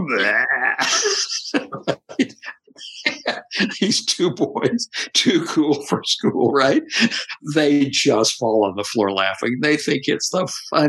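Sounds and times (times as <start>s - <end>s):
voice imitating a long loud rumbling belch: 0.0s - 1.0s
speech: 0.1s - 1.6s, 3.8s - 10.8s
laughter: 0.1s - 8.1s.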